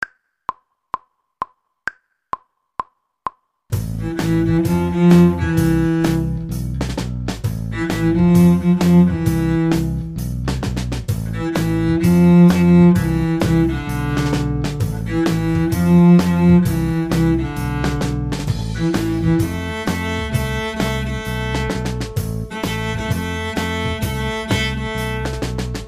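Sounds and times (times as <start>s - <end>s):
cello section: 3.8s - 6.9s, 7.5s - 10.4s, 11.1s - 25.8s.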